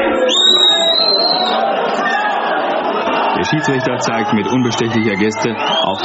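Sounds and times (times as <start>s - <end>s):
stadium crowd uproar at a football match: 0.0s - 6.0s
shrill whistle-like tone: 0.1s - 2.2s, 4.4s - 6.0s
speech: 3.5s - 6.0s.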